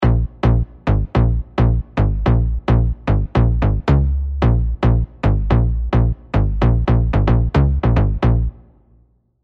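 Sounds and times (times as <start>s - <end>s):
bouncing analogue bass synth: 0.0s - 8.7s.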